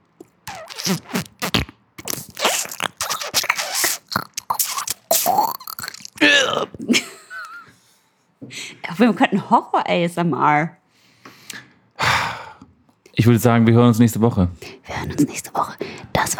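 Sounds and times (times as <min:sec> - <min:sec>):
voice making wet crunchy squelching mouth noises imitating thumbs squeezed into eyes: 0:00.2 - 0:06.9
speech: 0:00.8 - 0:01.3, 0:09.0 - 0:10.8, 0:13.2 - 0:15.7.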